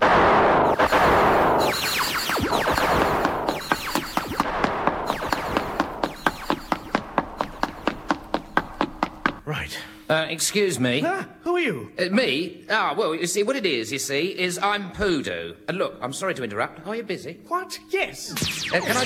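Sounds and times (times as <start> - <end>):
gunfire: 0.0 - 7.9, 18.4 - 19.0
speech: 10.3 - 19.0.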